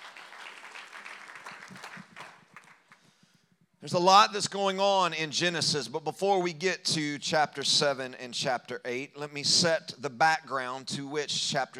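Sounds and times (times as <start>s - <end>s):
audience applause: 0.0s - 3.0s
speech: 3.8s - 11.7s.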